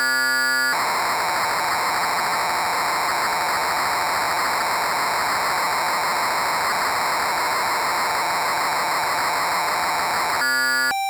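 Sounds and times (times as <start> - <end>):
synthesizer patches: 0.1 - 10.9.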